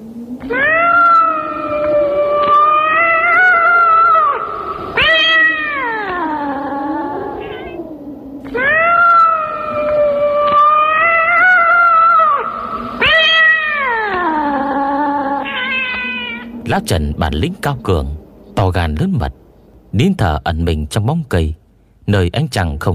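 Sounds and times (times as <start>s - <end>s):
speech: 0.4s - 0.7s, 16.8s - 22.9s
lame cat wailing desperately in drawn-out yowls: 0.4s - 16.6s.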